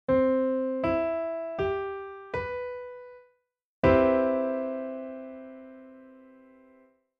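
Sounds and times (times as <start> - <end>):
maj7 piano chord: 0.1 - 3.2, 3.8 - 6.9.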